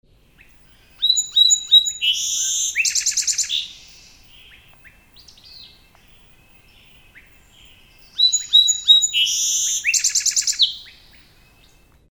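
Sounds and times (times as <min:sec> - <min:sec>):
song sparrow singing: 0:00.3 - 0:12.0.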